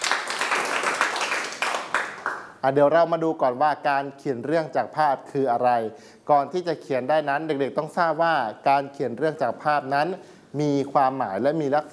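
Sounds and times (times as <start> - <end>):
class of schoolchildren clapping: 0.0 - 2.6
speech: 2.6 - 11.9.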